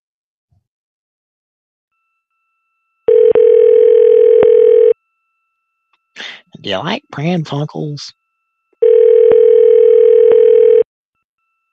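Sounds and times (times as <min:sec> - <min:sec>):
telephone dial tone: 0:03.1 - 0:05.0, 0:08.8 - 0:10.9
speech: 0:06.6 - 0:08.2.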